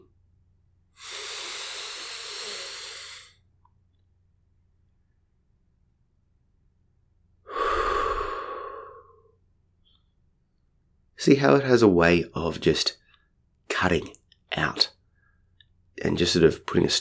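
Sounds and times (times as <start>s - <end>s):
breathy exhale out through the mouth: 1.0s - 3.4s, 7.5s - 9.2s
slow inhale through the nose: 1.0s - 3.4s, 7.5s - 9.2s
speech: 11.2s - 13.0s, 13.8s - 15.0s, 16.0s - 16.9s.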